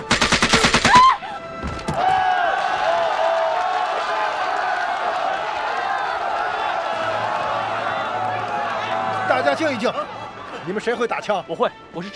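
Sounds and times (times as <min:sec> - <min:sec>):
rapid burst of gunshots during a hostage standoff: 0:00.1 - 0:01.0
loud sustained crowd-like noise: 0:01.9 - 0:12.0.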